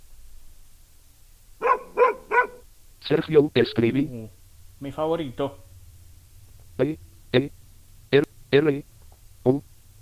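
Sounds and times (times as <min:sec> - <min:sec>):
dog barking: 0:01.6 - 0:02.7
speech: 0:03.1 - 0:05.6, 0:06.8 - 0:09.7.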